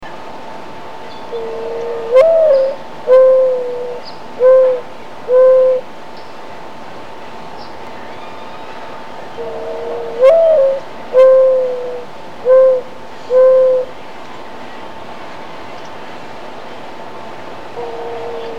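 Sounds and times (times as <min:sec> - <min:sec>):
mourning dove cooing: 0:01.2 - 0:05.9, 0:08.4 - 0:14.0, 0:17.7 - 0:18.5.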